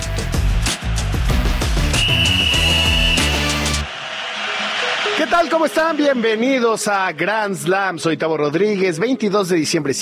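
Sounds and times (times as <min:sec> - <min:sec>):
loud rhythmic music: 0:00.0 - 0:07.6
referee's starting whistle blast: 0:01.8 - 0:03.8
speech: 0:02.1 - 0:02.9, 0:05.3 - 0:10.0.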